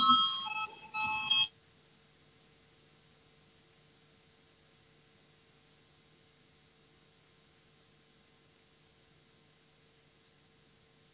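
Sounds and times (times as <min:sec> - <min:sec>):
electronic bell ringing to call a parliamentary vote: 0:00.0 - 0:01.5.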